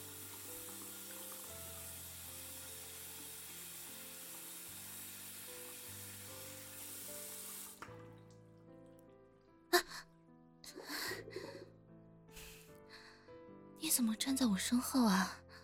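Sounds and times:
tap water running into a sink: 0:00.0 - 0:08.6
speech: 0:14.0 - 0:15.4.

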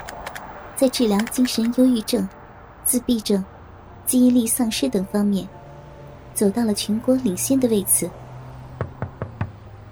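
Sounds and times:
speech: 0:00.8 - 0:03.5, 0:04.1 - 0:05.6, 0:06.4 - 0:08.2
soft knocks on a door: 0:08.8 - 0:09.6.

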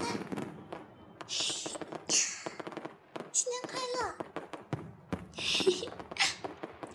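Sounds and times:
New Year fireworks crackling and popping: 0:00.0 - 0:06.9.

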